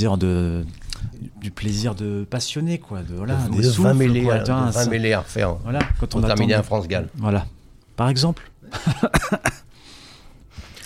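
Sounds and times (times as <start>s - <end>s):
speech: 0.0s - 9.6s
laughter: 8.7s - 9.6s
person coughing: 9.0s - 9.6s.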